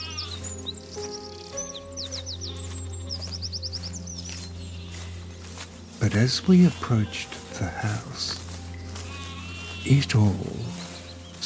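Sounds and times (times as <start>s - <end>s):
sheep bleating: 0.0s - 0.4s, 6.1s - 8.3s, 8.9s - 10.4s
birds chirping in trills on a sunny day: 0.0s - 11.4s
speech: 6.0s - 8.4s, 9.8s - 10.8s.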